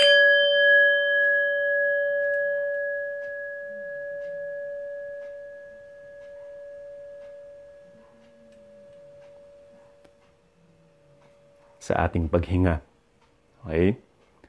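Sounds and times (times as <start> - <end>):
gong struck for a breathing meditation: 0.0 - 9.9
speech: 11.9 - 12.9, 13.7 - 14.0.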